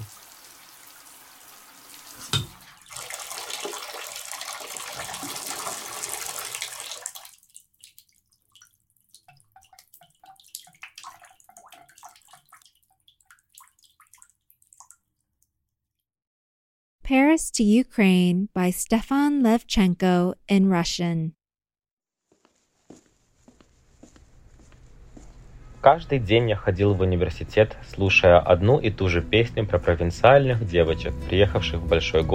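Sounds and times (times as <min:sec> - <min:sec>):
shower water running in an apartment in Paris: 0:00.0 - 0:15.0
speech: 0:17.1 - 0:21.4, 0:25.8 - 0:32.3.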